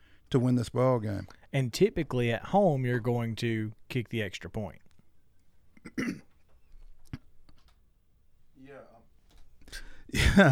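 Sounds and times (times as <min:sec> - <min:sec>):
speech: 0:00.3 - 0:04.8, 0:05.8 - 0:06.3, 0:09.7 - 0:10.4
short rough throat clearing: 0:05.8 - 0:06.4.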